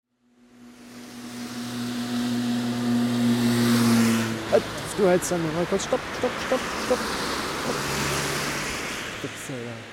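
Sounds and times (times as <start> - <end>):
many cars driving past on a road on a cold day: 0.1 - 9.9
brief voice-like sounds: 4.5 - 7.9
speech: 4.6 - 7.8.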